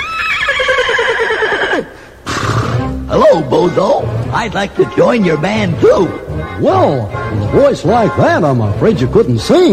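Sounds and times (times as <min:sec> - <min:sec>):
horse neighing: 0:00.0 - 0:03.1
speech: 0:03.3 - 0:09.7.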